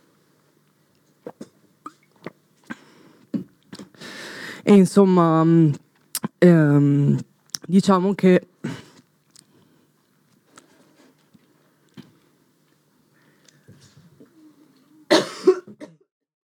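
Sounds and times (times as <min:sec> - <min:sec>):
faint clicks and small mouth noises: 0:00.6 - 0:04.0, 0:05.8 - 0:06.4, 0:07.4 - 0:07.7, 0:08.9 - 0:14.9
speech: 0:04.7 - 0:05.8, 0:06.4 - 0:08.5
person coughing: 0:15.1 - 0:16.1.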